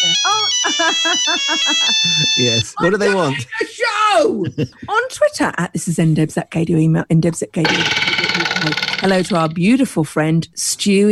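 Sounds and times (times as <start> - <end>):
phone ringing with warbling melodic ringtone: 0.0 - 3.3, 7.6 - 9.5
laughter: 0.0 - 5.1
speech: 0.1 - 11.1.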